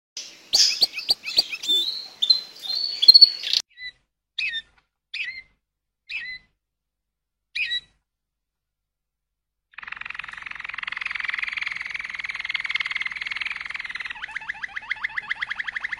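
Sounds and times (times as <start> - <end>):
Waterslager canary singing: 0.2 - 6.5, 7.6 - 8.0, 9.8 - 15.9.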